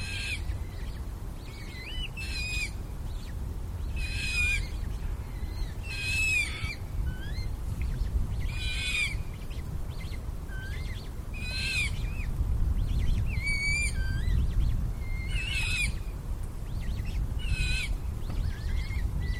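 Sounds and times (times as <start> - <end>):
young Eurasian coots squealing: 0.0 - 3.3, 3.9 - 12.3, 12.9 - 16.1, 16.8 - 19.3.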